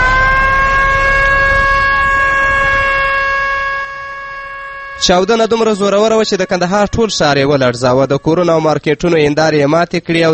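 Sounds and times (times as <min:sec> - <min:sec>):
ambulance siren in Kandahar after a bomb explosion: 0:00.0 - 0:08.7
speech: 0:05.0 - 0:10.3.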